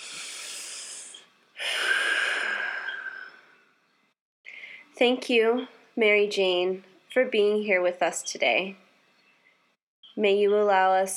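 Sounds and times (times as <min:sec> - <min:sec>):
deep breathing: 0:00.0 - 0:03.6
speech: 0:05.0 - 0:08.8, 0:10.2 - 0:11.1.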